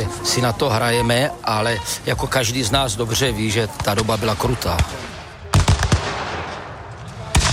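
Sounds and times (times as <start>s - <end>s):
speech: 0.2s - 5.1s
steady outdoor rumble of battle noise: 3.7s - 7.5s
sharp gunshots at battle reenactment: 3.8s - 7.5s.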